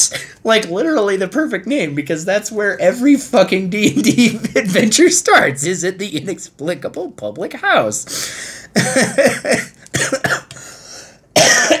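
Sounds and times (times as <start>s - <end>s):
speech: 0.0s - 10.7s
harsh raspy coughing after laughing hard: 8.7s - 10.7s, 11.3s - 11.7s
laughter: 8.8s - 9.6s.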